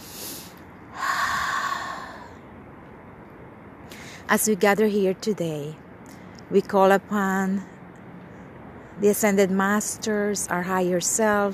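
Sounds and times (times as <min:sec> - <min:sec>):
deep breath drawn during a guided prayer: 0:00.0 - 0:02.4
speech: 0:04.3 - 0:05.8, 0:06.5 - 0:07.7, 0:09.0 - 0:11.5.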